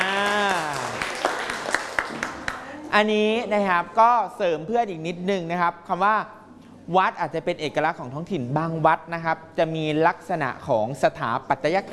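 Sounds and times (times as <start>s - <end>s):
classroom applause for a classmate: 0.0s - 2.6s
individual sharp claps: 0.0s - 2.7s
speech: 2.9s - 11.9s.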